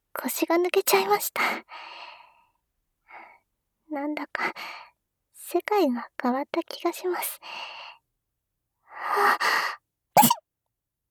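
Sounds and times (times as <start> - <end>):
speech: 0.2 - 2.1, 3.9 - 4.9, 5.5 - 7.8, 9.0 - 9.8
person sneezing: 10.2 - 10.4.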